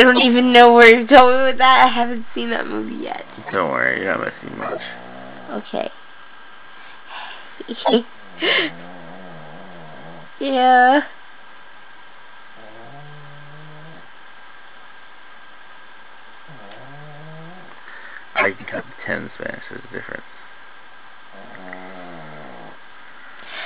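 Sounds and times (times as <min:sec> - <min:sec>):
speech: 0:00.0 - 0:06.0, 0:07.1 - 0:08.9, 0:10.4 - 0:11.2, 0:18.4 - 0:20.4
steady hiss: 0:00.0 - 0:23.6
female dog snoring: 0:04.6 - 0:05.6, 0:08.6 - 0:10.3, 0:12.6 - 0:14.1, 0:16.5 - 0:17.8, 0:21.3 - 0:22.8.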